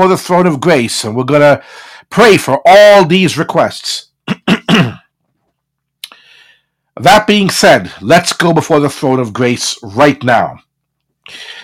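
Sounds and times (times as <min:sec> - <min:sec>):
speech: 0:00.0 - 0:04.0, 0:07.0 - 0:10.6, 0:11.3 - 0:11.6
gravelly throat clearing: 0:04.2 - 0:05.2.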